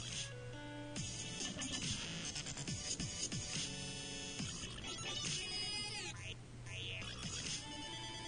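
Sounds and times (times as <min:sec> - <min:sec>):
chirpy synth melody of a dubstep remix of a mobile phone ringtone: 0:00.0 - 0:08.2
punchy electronic dubstep beats: 0:01.0 - 0:06.1, 0:06.8 - 0:08.2.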